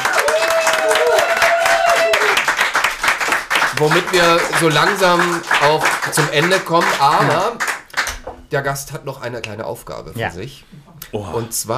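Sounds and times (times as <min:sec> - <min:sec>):
small audience clapping: 0:00.0 - 0:08.4
speech: 0:03.8 - 0:07.7, 0:08.5 - 0:11.7.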